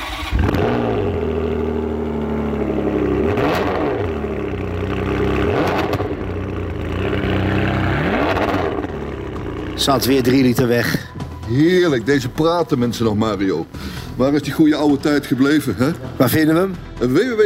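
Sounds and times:
vintage car engine revving in neutral: 0:00.0 - 0:11.4
speech: 0:09.8 - 0:17.4.

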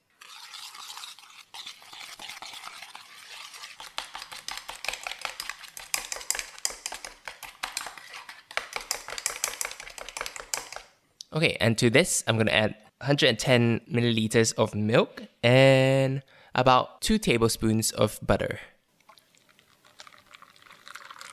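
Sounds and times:
sugar and eggs being whisked together by hand: 0:00.0 - 0:11.0, 0:19.4 - 0:21.3
speech: 0:11.4 - 0:18.7.

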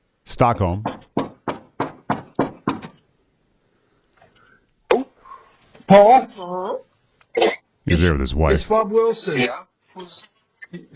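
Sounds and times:
speech: 0:00.3 - 0:00.9, 0:05.9 - 0:06.9, 0:07.9 - 0:10.9
loud knocking on a front door: 0:00.8 - 0:03.0.

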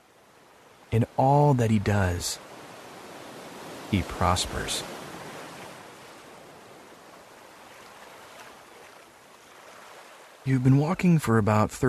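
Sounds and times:
speech: 0:00.9 - 0:02.5, 0:03.9 - 0:04.9, 0:10.4 - 0:11.8
distant waterfall roar: 0:03.9 - 0:04.8.

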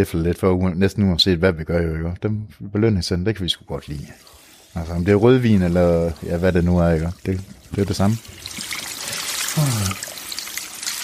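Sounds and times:
speech: 0:00.0 - 0:08.6, 0:09.6 - 0:10.1
water trickling from a running tap: 0:03.9 - 0:11.0.

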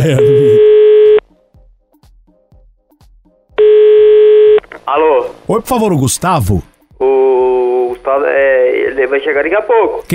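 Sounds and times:
speech: 0:00.0 - 0:00.4, 0:04.9 - 0:07.2, 0:08.0 - 0:10.1
telephone ringback tone on the line while calling: 0:00.0 - 0:01.2, 0:03.6 - 0:04.6.

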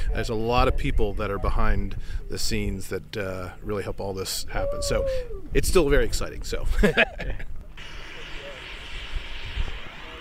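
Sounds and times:
speech: 0:00.1 - 0:07.5
liquid oxygen venting from a rocket's oxidizer tank: 0:05.8 - 0:10.1
laughter: 0:06.7 - 0:07.5.

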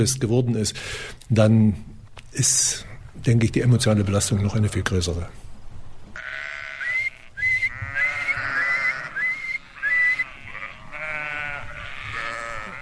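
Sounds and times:
speech: 0:00.0 - 0:05.4
ewes and lambs bleating outdoors: 0:06.2 - 0:12.8
shepherd whistling to his flock at pasture: 0:06.8 - 0:10.3.

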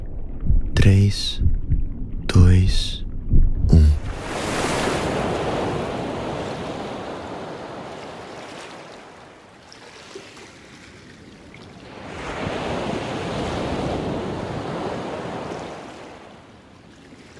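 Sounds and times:
faint windy rumble: 0:00.0 - 0:07.2
speech: 0:00.8 - 0:01.6, 0:02.3 - 0:03.0
ocean surf rolling in near the shore in the late afternoon: 0:03.7 - 0:09.2, 0:11.8 - 0:16.4.

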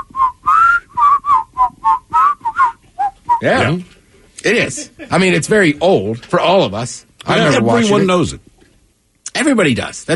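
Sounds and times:
person whistling a TV theme tune: 0:00.0 - 0:03.5
speech: 0:03.4 - 0:08.4, 0:09.4 - 0:10.1.

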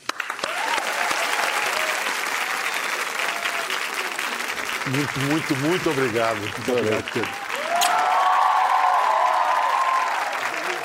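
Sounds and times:
audience applause: 0:00.0 - 0:10.8
faint cheers within the crowd: 0:00.4 - 0:04.2, 0:07.0 - 0:10.8
speech: 0:04.9 - 0:07.4.

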